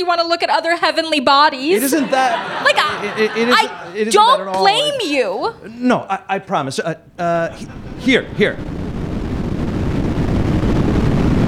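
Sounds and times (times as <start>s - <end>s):
speech: 0.0s - 8.8s
laughter: 1.6s - 6.0s, 7.2s - 8.5s
SpaceX rocket launch roar: 7.5s - 11.4s.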